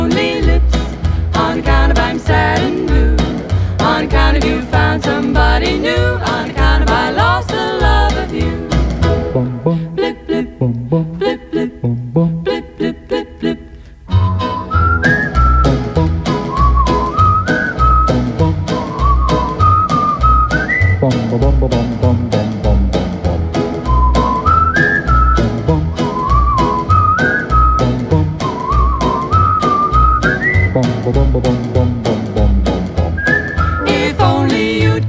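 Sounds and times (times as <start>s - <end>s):
bouncy musical backing with a regular beat: 0.0s - 35.0s
bright whistled melody: 14.1s - 21.8s, 23.7s - 34.4s.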